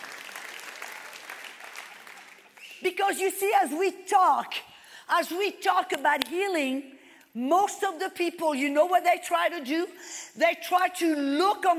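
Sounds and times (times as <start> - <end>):
audience clapping: 0.0 - 2.8
speech: 2.8 - 11.7.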